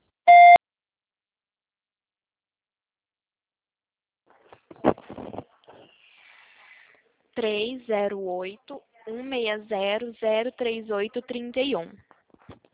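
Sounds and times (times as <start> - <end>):
electronic beep from an automated phone line: 0.3 - 0.6
speech: 7.4 - 12.0.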